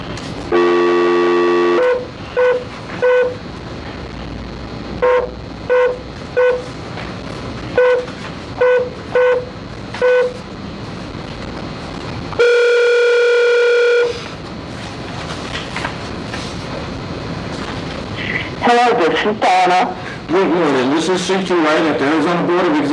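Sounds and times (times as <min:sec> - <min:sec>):
faint hum: 0:00.0 - 0:22.9
outgoing telephone call tones: 0:00.5 - 0:03.4, 0:12.4 - 0:14.2
speech: 0:19.3 - 0:22.9.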